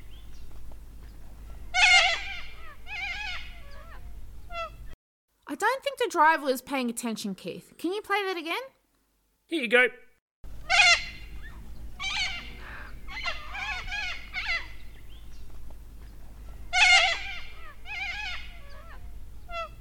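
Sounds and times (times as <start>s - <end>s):
low steady rumble: 0.0s - 5.0s, 10.5s - 19.7s
crested cockatoo screeching: 1.7s - 4.9s, 10.6s - 14.8s, 16.7s - 19.7s
speech: 5.6s - 8.8s, 9.5s - 10.0s.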